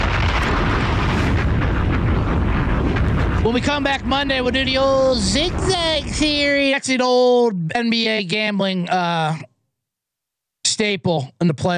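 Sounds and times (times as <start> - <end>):
bomb explosion sound effect: 0.0 - 7.2
speech: 3.5 - 9.5, 10.8 - 11.7.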